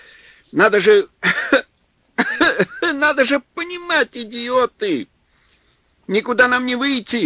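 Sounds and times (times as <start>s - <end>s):
speech: 0.5s - 5.1s, 6.1s - 7.2s
man coughing after gulping cold wind in the snow: 1.2s - 2.9s.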